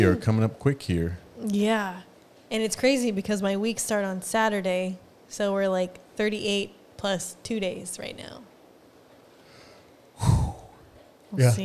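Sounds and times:
speech: 0:00.0 - 0:08.5, 0:11.3 - 0:11.6
person yawning: 0:10.2 - 0:11.6.

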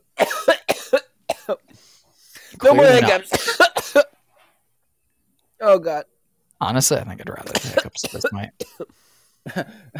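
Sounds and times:
person coughing after smoking weed: 0:00.2 - 0:01.7, 0:02.8 - 0:04.2, 0:07.5 - 0:09.8
speech: 0:02.7 - 0:04.1, 0:05.7 - 0:09.9.

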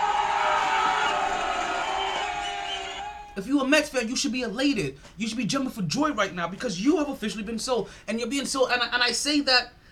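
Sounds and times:
large crowd cheering and roaring: 0:00.0 - 0:03.4
speech: 0:03.4 - 0:09.8.

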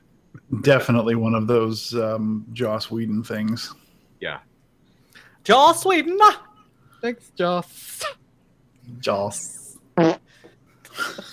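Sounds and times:
speech: 0:00.6 - 0:04.5, 0:05.4 - 0:06.4, 0:07.0 - 0:08.2, 0:08.9 - 0:10.2
short buzzy fart: 0:10.0 - 0:10.4.

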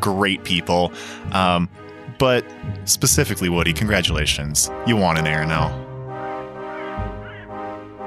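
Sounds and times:
speech: 0:00.0 - 0:05.8
steady tonal musical backdrop: 0:00.0 - 0:08.0
crow cawing: 0:06.6 - 0:07.6.

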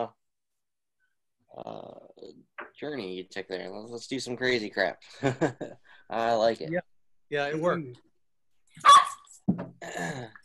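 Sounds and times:
speech: 0:01.6 - 0:08.1
dog barking and yipping: 0:08.8 - 0:09.3.

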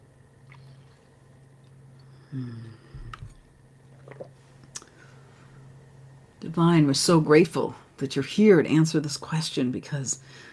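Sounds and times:
steady low hum: 0:00.0 - 0:10.5
person taking a swig of water, gulping and swallowing: 0:01.6 - 0:04.9
speech: 0:02.3 - 0:02.8, 0:06.4 - 0:10.5
soft mouth clicks and sips: 0:02.9 - 0:05.0.

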